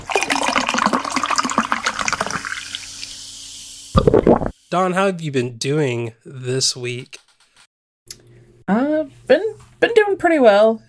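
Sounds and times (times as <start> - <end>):
drink pouring into a glass: 0.1 - 3.2, 4.0 - 4.5
fizzing bubbles of a drink: 0.1 - 3.3, 3.9 - 4.5
speech: 4.7 - 7.3, 8.1 - 10.8.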